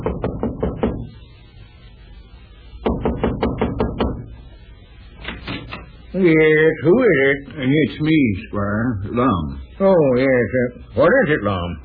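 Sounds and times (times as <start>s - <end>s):
firm knocking on the wooden front door of a home: 0.0s - 1.0s, 2.9s - 4.2s
speech: 6.2s - 11.8s.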